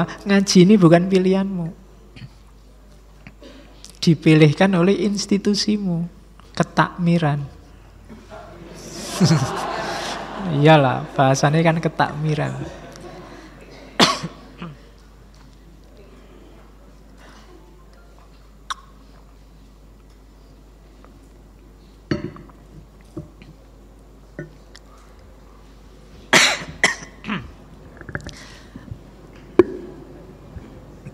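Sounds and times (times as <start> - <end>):
speech: 0.0 - 2.3, 4.0 - 7.6, 9.2 - 9.7, 10.4 - 12.8
person coughing during a philosophy lecture: 3.4 - 3.8, 13.9 - 14.9, 26.3 - 27.6
laughter: 8.1 - 14.8.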